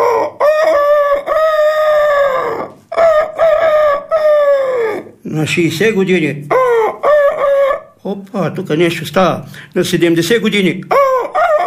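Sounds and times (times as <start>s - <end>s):
loud voice imitating a rooster's cock-a-doodle-doo: 0.0s - 5.2s, 6.5s - 7.9s, 10.9s - 11.6s
speech: 5.4s - 6.6s, 8.0s - 11.0s.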